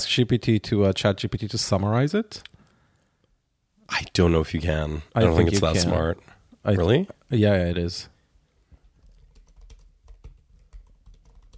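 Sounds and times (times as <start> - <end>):
speech: 0.0 - 2.6, 3.9 - 8.1
computer keyboard typing: 9.0 - 11.5.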